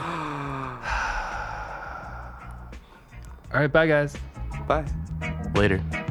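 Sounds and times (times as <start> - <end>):
heavy breathing into the microphone: 0.0 - 3.6
speech: 3.5 - 6.0.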